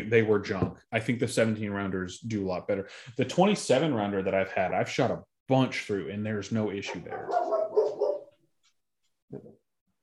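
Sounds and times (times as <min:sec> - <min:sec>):
speech: 0:00.0 - 0:07.6, 0:09.3 - 0:09.6
dog barking in response to another dog: 0:06.9 - 0:08.4.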